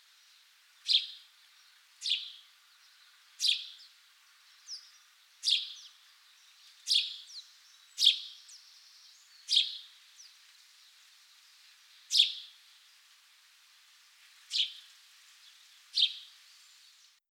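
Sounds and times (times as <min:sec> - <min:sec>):
house sparrow Passer domesticus chirping: 0:00.8 - 0:10.8, 0:11.4 - 0:12.6, 0:14.5 - 0:17.0.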